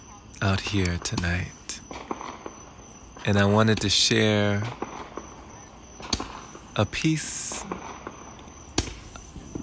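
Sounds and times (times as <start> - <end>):
speech: 0.4 - 1.6, 3.2 - 4.8, 6.8 - 7.8
fireworks popping and cracking in the neighborhood: 0.4 - 9.6.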